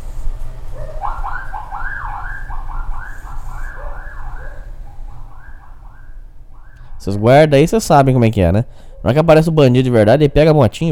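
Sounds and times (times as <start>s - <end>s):
continuous low engine and traffic rumble: 0.0s - 10.9s
motorcycle siren beeping with warbling electronic tones: 0.8s - 6.9s
speech: 7.0s - 10.9s.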